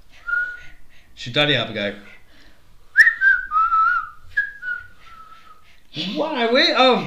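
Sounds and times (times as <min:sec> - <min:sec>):
person whistling breathy downward-sliding notes: 0:00.2 - 0:00.7, 0:02.9 - 0:05.6
speech: 0:01.2 - 0:02.2, 0:06.0 - 0:07.0.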